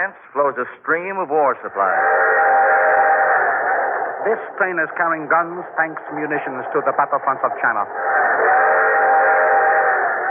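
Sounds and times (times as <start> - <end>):
speech: 0.0 - 2.8, 4.2 - 8.1
train hauling naval supplies, food, medicine and ammunition: 2.8 - 10.1.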